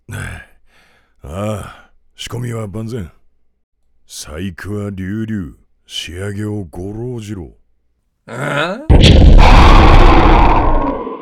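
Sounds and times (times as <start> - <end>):
speech: 1.2 - 3.2, 4.1 - 7.6, 8.3 - 10.2
person crying out: 8.3 - 9.0
makeshift bomb explosion: 8.9 - 11.2.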